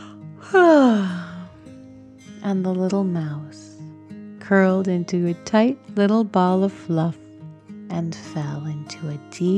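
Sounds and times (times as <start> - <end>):
person acting out a sleepy yawn: 0.4 - 1.5
speech: 2.5 - 3.6, 4.5 - 7.2, 7.9 - 9.5.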